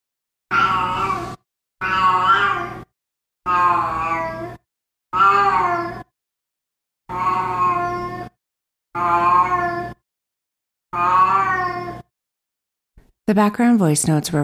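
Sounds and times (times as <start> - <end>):
cat meowing: 0.5 - 2.9, 3.5 - 4.6, 5.2 - 6.1, 7.1 - 8.3, 9.0 - 10.0, 10.9 - 12.0
speech: 13.3 - 14.4.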